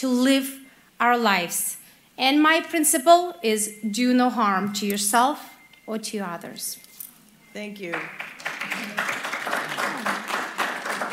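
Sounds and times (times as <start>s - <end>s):
speech: 0.0s - 6.8s, 7.6s - 9.0s
audience at a candidates' forum clapping: 7.8s - 11.1s.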